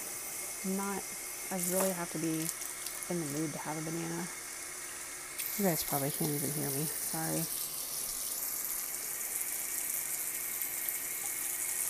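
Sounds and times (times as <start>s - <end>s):
water running from a tap while rinsing out recycling: 0.0s - 11.8s
speech: 0.6s - 4.4s, 5.6s - 7.6s.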